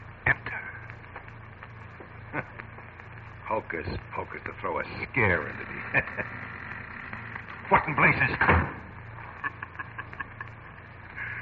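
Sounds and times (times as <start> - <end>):
low steady hum: 0.0 - 11.4
laughter: 2.3 - 2.7, 4.7 - 6.8, 9.1 - 11.4
speech: 3.5 - 6.6, 7.8 - 8.8
door slamming shut with a heavy thud: 8.4 - 8.9.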